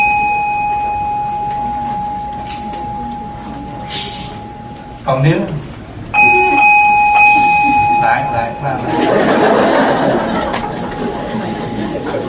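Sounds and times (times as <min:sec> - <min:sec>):
large village communal house bell being struck and ringing: 0:00.0 - 0:05.2, 0:06.2 - 0:10.2
speech: 0:05.2 - 0:05.6
laughter: 0:07.3 - 0:12.2.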